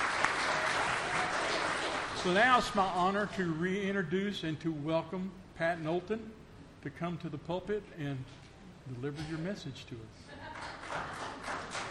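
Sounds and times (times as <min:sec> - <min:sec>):
audience applause: 0:00.0 - 0:02.3, 0:10.6 - 0:11.9
speech: 0:02.2 - 0:10.3.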